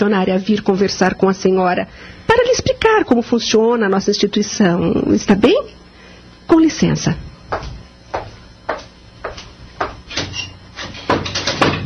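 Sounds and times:
speech: 0.0 - 5.8, 6.5 - 7.7
footsteps crossing the room: 7.5 - 10.9.

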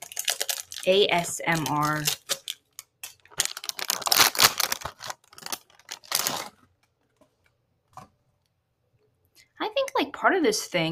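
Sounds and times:
packet of seaweed snack being torn open: 0.0 - 7.2
speech: 0.8 - 2.2, 10.2 - 10.9.

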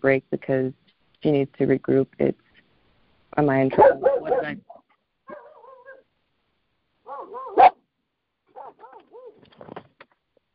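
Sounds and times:
speech: 0.0 - 2.4, 3.4 - 4.6
dog barking excitedly: 3.7 - 6.1, 7.0 - 7.8, 8.5 - 9.4.

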